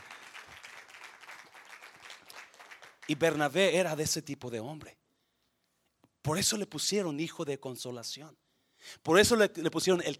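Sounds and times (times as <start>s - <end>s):
church audience applauding: 0.0s - 3.4s
speech: 3.1s - 5.0s, 6.3s - 10.1s.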